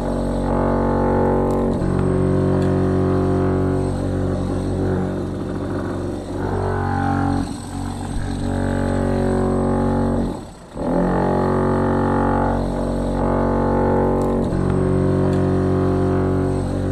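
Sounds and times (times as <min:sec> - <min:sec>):
drill boring into a basement exterior wall for a spigot: 0:00.0 - 0:16.8.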